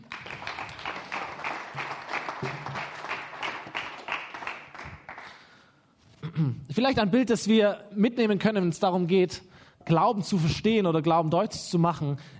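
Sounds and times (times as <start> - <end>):
audience applauding a person: 0.0 - 5.5
speech: 6.4 - 12.3.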